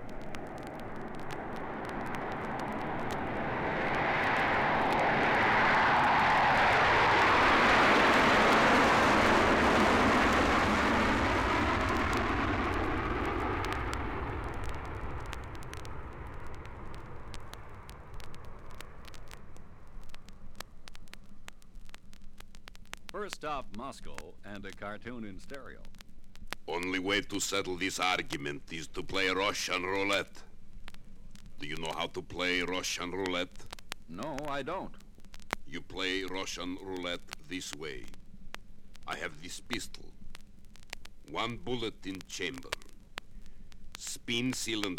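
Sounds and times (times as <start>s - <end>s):
jet aircraft engines roaring past during flight: 0.0s - 18.9s
speech: 23.3s - 26.0s, 26.7s - 30.5s, 31.7s - 35.0s, 35.7s - 38.2s, 39.1s - 40.0s, 41.3s - 42.8s, 44.0s - 44.9s.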